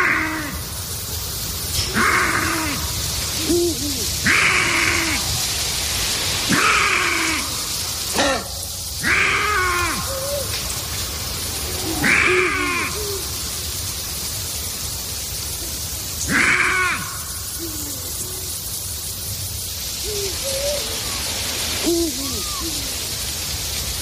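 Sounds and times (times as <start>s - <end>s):
steady hiss of noise: 0.0s - 24.0s
lynx calling in mating season: 1.9s - 5.4s, 8.2s - 10.8s, 11.6s - 13.5s, 15.6s - 18.7s, 20.0s - 23.1s.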